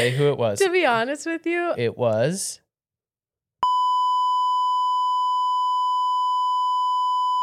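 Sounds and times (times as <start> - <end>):
speech: 0.0 - 2.6
censor bleep: 3.6 - 7.4.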